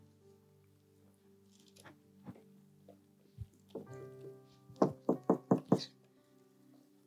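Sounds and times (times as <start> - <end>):
firm knocks on a door: 4.8 - 5.9.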